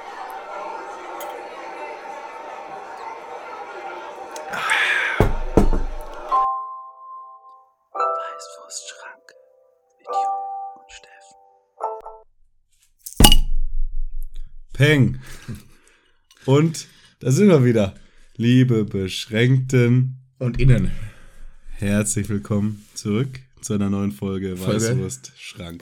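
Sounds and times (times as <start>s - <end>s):
murmuring bar chatter: 0.0s - 6.4s
sharp loud knock: 5.2s - 6.0s
glasses of Pils beer clinking in a toast: 13.2s - 13.5s
speech: 14.8s - 15.7s, 16.4s - 21.1s, 21.8s - 25.8s.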